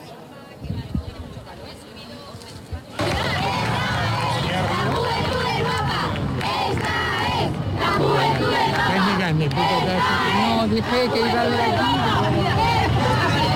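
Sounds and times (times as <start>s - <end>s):
large crowd of young people shouting and cheering at the Royal Palace: 3.0s - 13.5s.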